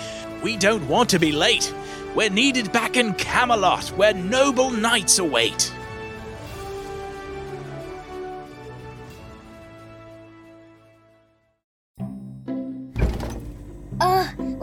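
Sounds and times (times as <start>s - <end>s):
music: 0.0s - 14.6s
speech: 0.4s - 5.8s
fridge door slamming shut: 13.0s - 13.7s.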